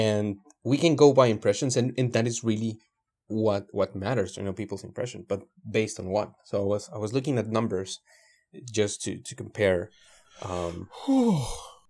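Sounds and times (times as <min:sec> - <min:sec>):
speech: 0:00.0 - 0:11.7
person gasping with drawn-out exhale: 0:10.2 - 0:11.8.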